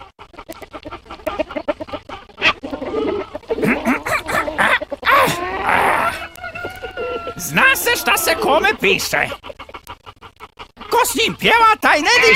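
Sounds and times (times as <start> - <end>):
fowl clucking and squawking: 0.0 - 11.3, 12.1 - 12.3
village rooster crowing: 5.1 - 8.6
speech: 8.1 - 9.4, 11.1 - 12.3.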